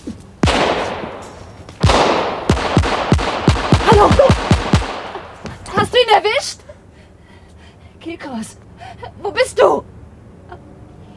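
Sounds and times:
gunshots fired at a car: 0.4s - 5.4s
speech: 6.0s - 6.6s, 8.0s - 9.8s.

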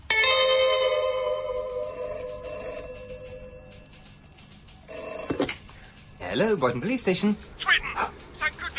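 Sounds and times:
telephone bell ringing at a police station: 0.3s - 4.0s, 4.9s - 5.9s
speech: 6.4s - 8.1s.

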